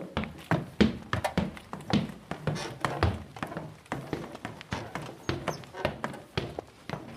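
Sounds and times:
footsteps climbing a short flight of indoor stairs: 0.0s - 7.1s.

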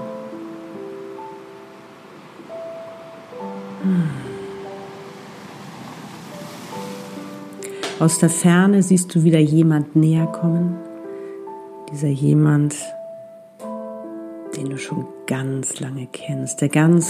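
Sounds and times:
soft ocean waves rolling in and out: 0.0s - 11.8s
gentle tonal hums: 0.0s - 16.4s
speech: 3.8s - 4.2s, 8.0s - 10.8s, 11.9s - 13.0s, 14.6s - 17.0s.

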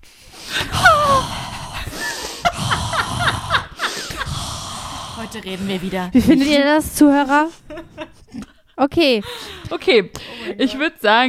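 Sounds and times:
person taking a loud exaggerated wheezy breath in: 0.1s - 6.5s
laughter: 0.6s - 4.5s, 5.8s - 8.6s
speech: 5.3s - 11.2s.

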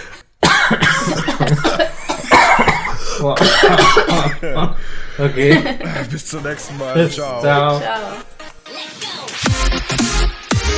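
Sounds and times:
person coughing: 0.0s - 4.6s
laughter: 1.3s - 2.3s, 3.4s - 7.1s
speech: 3.2s - 8.4s, 9.7s - 10.7s.

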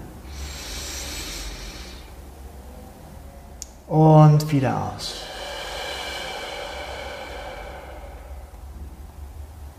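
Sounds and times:
deep breath drawn in through the nose during a guided meditation: 0.2s - 2.3s, 5.0s - 9.1s
speech: 3.9s - 5.3s.

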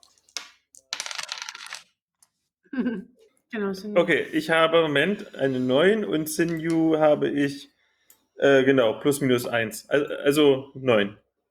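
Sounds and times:
dice clattering on a surface: 0.2s - 2.0s
speech: 2.7s - 7.7s, 8.4s - 11.2s.

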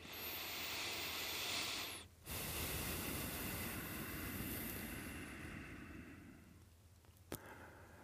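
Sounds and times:
deep breath in and out as a breathing exercise: 0.0s - 6.6s, 7.3s - 8.0s.

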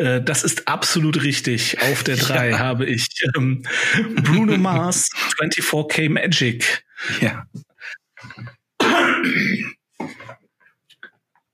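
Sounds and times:
speech: 0.0s - 10.4s
laughter: 1.6s - 2.8s, 3.7s - 5.4s
harsh cough from an allergic reaction: 8.3s - 10.4s.

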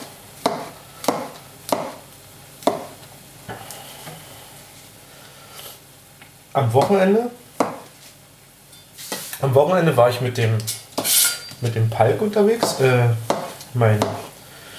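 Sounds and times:
knife chopping mushrooms into small pieces: 0.0s - 3.6s, 6.7s - 8.0s, 12.0s - 14.7s
speech: 6.6s - 7.4s, 9.6s - 10.8s, 11.6s - 14.2s.

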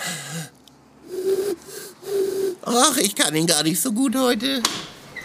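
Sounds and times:
person imitating eagle owl hoots: 1.0s - 2.8s
speech: 2.7s - 4.9s.

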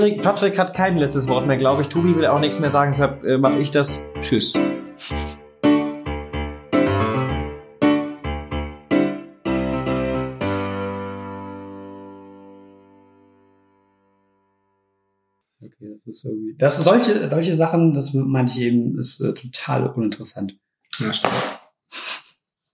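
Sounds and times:
speech: 0.0s - 5.3s, 16.1s - 21.6s
short instrumental podcast outro music with bright punchy chords: 0.0s - 14.3s.

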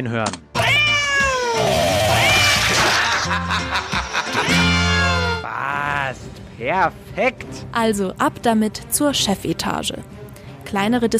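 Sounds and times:
speech: 0.0s - 0.4s, 5.5s - 11.1s
cat meowing and yowling: 0.6s - 2.7s
laughter: 2.2s - 5.4s.

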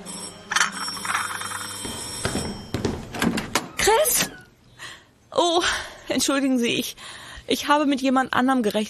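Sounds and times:
doorbell ringing: 0.0s - 3.2s
speech: 5.6s - 8.8s.

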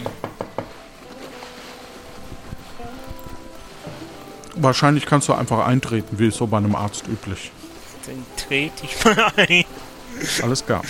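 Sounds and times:
firm knocking on a doctor's practice door: 0.0s - 0.8s
speech: 4.6s - 10.8s
laughter: 8.8s - 10.8s.

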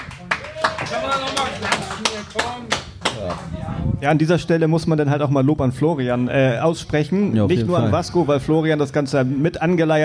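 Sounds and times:
small group clapping in a steady rhythm: 0.0s - 3.8s
speech: 0.6s - 10.0s.

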